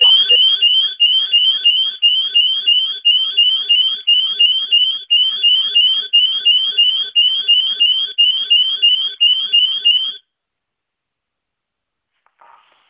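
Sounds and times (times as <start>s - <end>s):
emergency call-out alarm: 0.0s - 10.2s.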